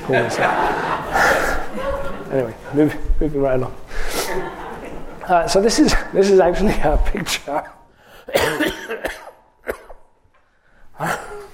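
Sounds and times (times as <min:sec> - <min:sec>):
laughter: 0:00.0 - 0:03.0, 0:04.0 - 0:05.9
speech: 0:00.1 - 0:03.8, 0:05.3 - 0:08.6
harsh throaty coughing: 0:08.2 - 0:10.1, 0:11.0 - 0:11.5.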